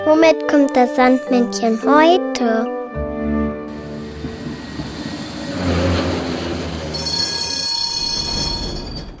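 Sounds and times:
speech: 0.2s - 2.7s
tram rumbling along its rails: 3.6s - 9.1s
faint tram wheel squeal: 3.7s - 9.1s.

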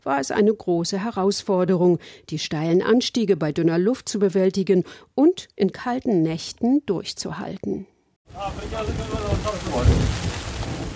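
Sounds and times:
speech: 0.0s - 10.3s
deep rumbling thunder: 8.3s - 10.9s
rain pattering on a tent on the slopes of Mount Ararat in Turkey: 8.3s - 10.9s.

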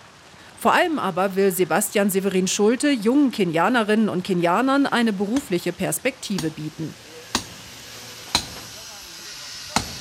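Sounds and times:
speech: 0.6s - 7.1s
faint hissing background: 5.3s - 9.9s
hammer blows during guest room renovation at a hotel: 7.2s - 8.7s, 9.4s - 9.9s.

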